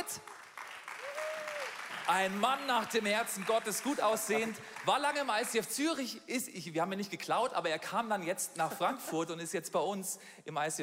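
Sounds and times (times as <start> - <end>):
crowd applause from a sizable audience welcoming a man onto the stage: 0.0 - 5.6
speech: 0.1 - 0.3, 2.1 - 10.8.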